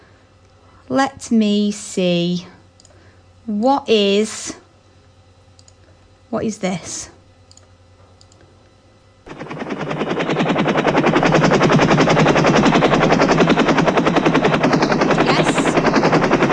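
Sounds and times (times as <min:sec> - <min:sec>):
speech: 0:00.9 - 0:02.6, 0:03.5 - 0:04.6, 0:06.3 - 0:07.2
helicopter rotor chop with high whine: 0:09.3 - 0:16.5.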